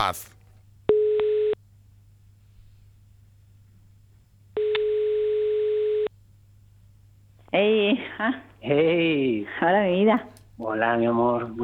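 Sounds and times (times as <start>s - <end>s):
speech: 0.0s - 0.4s, 7.5s - 11.6s
telephone dial tone when placing a call: 0.9s - 1.6s, 4.6s - 6.1s.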